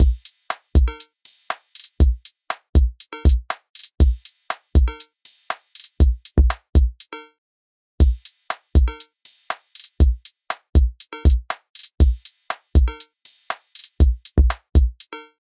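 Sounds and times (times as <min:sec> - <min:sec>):
analog drum machine beat: 0:00.0 - 0:07.1, 0:08.0 - 0:15.2.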